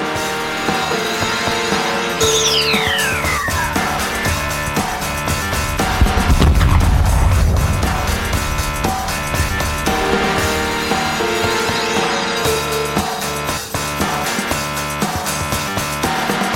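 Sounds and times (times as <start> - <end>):
dense rock music with guitars: 0.0 - 16.5
falling whistle-like sweep: 2.2 - 6.4
deep rumbling explosion effect in a song: 3.4 - 12.8.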